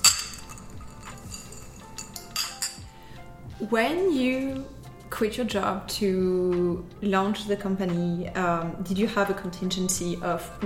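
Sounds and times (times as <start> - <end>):
glasses clinking in a toast: 0.0 - 3.0
speech: 3.6 - 10.6.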